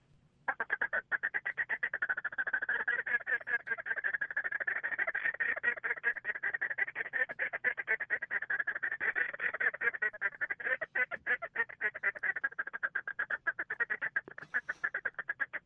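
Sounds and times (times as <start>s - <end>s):
duck call blown in a fast feeding chuckle: 0.5s - 15.6s.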